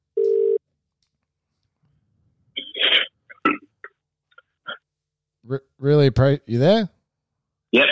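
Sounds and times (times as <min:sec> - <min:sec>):
short steady telephone tone while placing a call: 0:00.2 - 0:00.6
speech: 0:05.5 - 0:07.0, 0:07.7 - 0:07.9.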